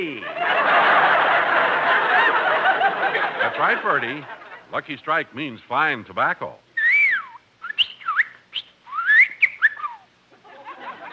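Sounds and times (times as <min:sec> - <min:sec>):
laughter: 0:00.0 - 0:04.7, 0:10.3 - 0:11.1
speech: 0:03.5 - 0:06.6
bird whistling and chirping: 0:06.8 - 0:10.1.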